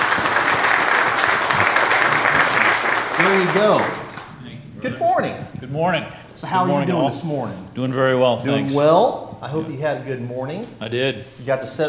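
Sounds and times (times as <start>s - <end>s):
audience applauding: 0.0s - 4.4s
speech: 3.3s - 4.0s, 4.8s - 11.8s.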